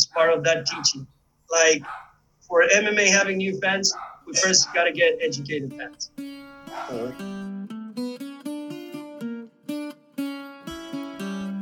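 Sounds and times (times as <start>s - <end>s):
dog barking: 0.1s - 1.0s, 1.7s - 2.2s, 3.8s - 5.4s, 6.7s - 7.2s
speech: 0.2s - 7.5s.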